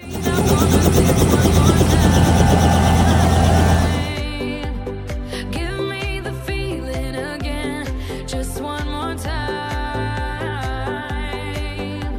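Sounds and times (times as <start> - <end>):
helicopter rotor chopping: 0.0 - 4.3
music: 0.0 - 12.1.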